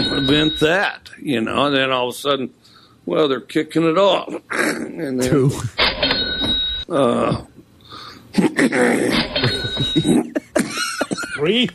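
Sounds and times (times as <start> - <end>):
speech: 0.3 - 6.0, 6.9 - 7.5, 8.4 - 11.7
throat-clearing groan: 6.9 - 7.6, 8.3 - 10.7
person coughing harshly: 8.4 - 11.5.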